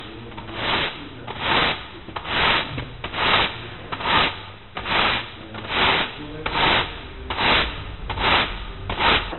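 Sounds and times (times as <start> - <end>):
broom sweeping: 0.0 - 9.3.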